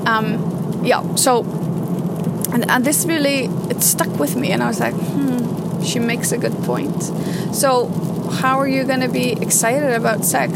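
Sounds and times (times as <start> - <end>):
rain pattering on a car windshield in sunny weather: 0.0 - 10.5
speech: 0.1 - 1.6, 2.5 - 10.5
short rising and falling vocal sounds: 5.0 - 5.5.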